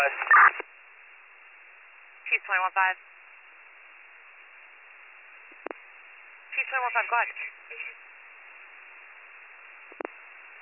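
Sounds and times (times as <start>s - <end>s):
band-limited radio channel static: 0.0s - 0.7s, 2.3s - 3.0s, 5.4s - 10.5s
radio transmission cutting off with quick clicks: 0.0s - 0.7s, 5.5s - 5.8s, 9.8s - 10.2s
speech: 0.0s - 0.7s, 2.4s - 3.2s, 6.6s - 8.1s.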